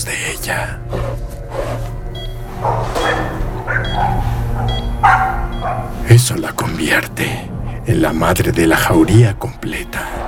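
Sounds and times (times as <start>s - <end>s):
speech: 0.0s - 2.0s, 5.7s - 10.2s
dog barking: 2.5s - 6.0s.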